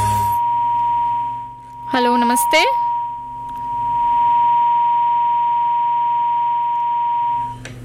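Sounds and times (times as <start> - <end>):
high-pitched tone from a dropped phone call: 0.0 - 7.6
speech: 2.0 - 2.9.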